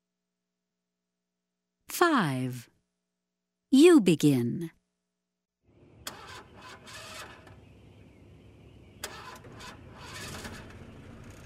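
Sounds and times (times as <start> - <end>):
speech: 2.0 - 2.7, 3.7 - 4.8
car engine churning and sputtering unevenly over a low rumble: 5.7 - 11.4.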